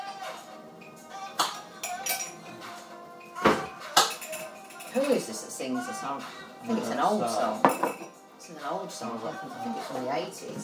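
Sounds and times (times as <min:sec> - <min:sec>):
crockery and spoon clinking as a cup is taken out: 0:00.8 - 0:05.6, 0:06.6 - 0:08.7
speech: 0:05.0 - 0:10.6.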